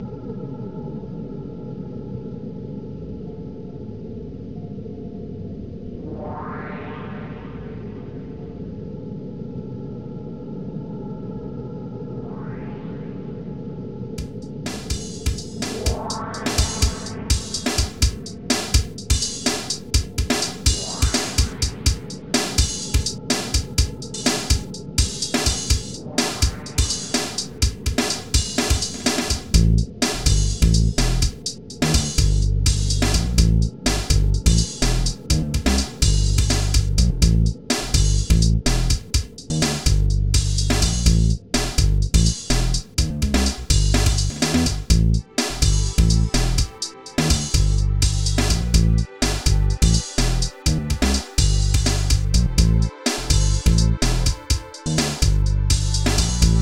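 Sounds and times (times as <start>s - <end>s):
weird drums: 14.2s - 56.5s.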